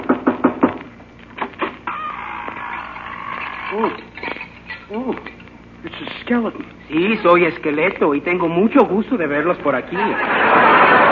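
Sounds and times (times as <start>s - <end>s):
knocking on a door: 0.0s - 0.8s
speech: 3.8s - 4.0s, 6.3s - 11.0s
laughter: 9.9s - 11.1s.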